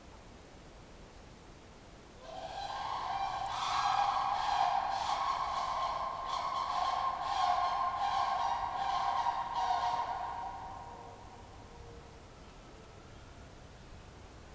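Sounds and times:
Sandhill Crane rolling rattling calls in a clearing in Ontario: 2.2 - 11.8.

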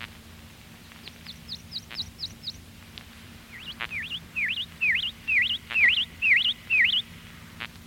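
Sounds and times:
faint low hum: 0.0 - 7.8
prothonotary warbler singing: 0.8 - 2.7, 3.4 - 7.2.

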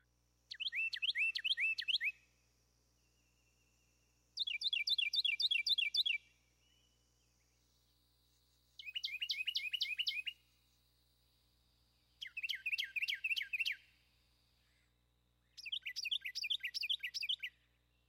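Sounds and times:
faint steady hum: 0.0 - 18.0
Carolina wren singing tea-kettle phrases: 0.5 - 2.2, 4.4 - 7.6, 8.7 - 10.4, 12.1 - 14.0, 15.5 - 18.0.

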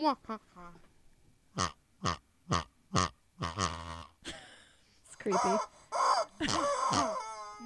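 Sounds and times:
speech: 0.0 - 0.9, 1.6 - 3.8, 5.2 - 5.7
strange distorted chicken call: 1.6 - 4.1, 5.3 - 7.6
pig grunting and oinking: 1.6 - 4.2, 6.4 - 7.3.

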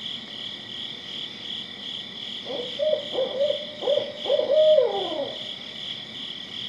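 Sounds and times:
insects buzzing: 0.0 - 6.6
barred owl hooting: 2.4 - 5.5.

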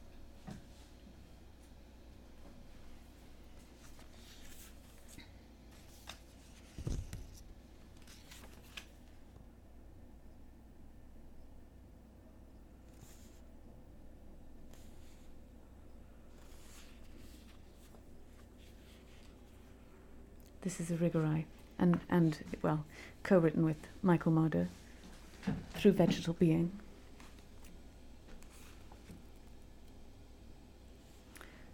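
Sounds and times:
low steady room hum: 0.0 - 31.7
rustling and scraping of a book being fetched and handled: 3.6 - 9.0, 12.9 - 13.4, 16.3 - 19.8
speech: 20.6 - 24.8, 25.4 - 26.8.

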